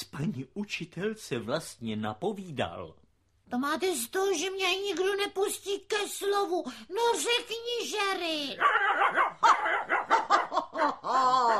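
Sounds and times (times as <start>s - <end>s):
speech: 0.2s - 9.5s
dog barking: 8.6s - 10.5s
laughter: 9.4s - 11.5s.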